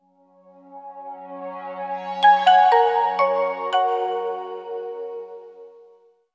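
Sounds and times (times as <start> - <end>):
mobile phone startup tune: 2.2 - 5.7.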